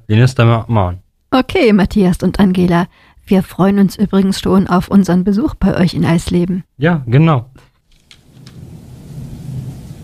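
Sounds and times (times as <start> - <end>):
speech: 0.1 - 7.7
brief crackling patter bursts: 7.8 - 10.0
constant hiss of steady rain: 7.8 - 10.0
deep rolling rumble of thunder: 8.2 - 10.0.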